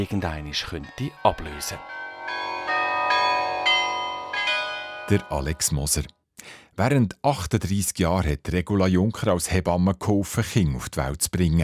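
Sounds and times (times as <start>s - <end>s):
speech: 0.0s - 2.4s, 5.1s - 11.6s
carillon bells played by a bell player: 0.0s - 5.8s.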